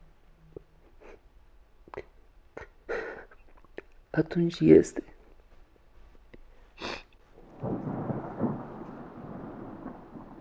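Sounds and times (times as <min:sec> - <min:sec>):
speech: 0:04.2 - 0:05.2
thunder cracking and rumbling: 0:07.4 - 0:10.3.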